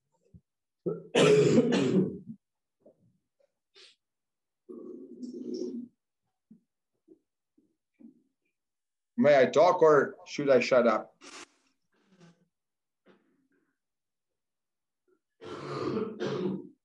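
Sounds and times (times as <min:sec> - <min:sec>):
coughing from a tickle in the throat: 0:00.9 - 0:02.4, 0:15.4 - 0:16.8
throat clearing from a tickle in the throat: 0:00.9 - 0:02.4, 0:15.4 - 0:16.8
speech: 0:09.2 - 0:11.4.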